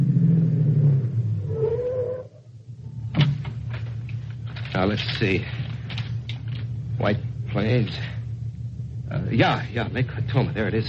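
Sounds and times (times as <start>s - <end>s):
car engine rumbling: 0.0s - 10.8s
lighter rattling noise: 2.8s - 7.0s
speech: 4.8s - 5.6s, 7.0s - 8.2s, 9.1s - 10.8s.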